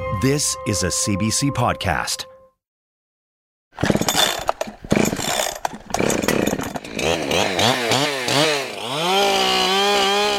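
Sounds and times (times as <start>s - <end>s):
speech: 0.2s - 2.3s
chainsaw cutting through a tree: 3.8s - 10.3s.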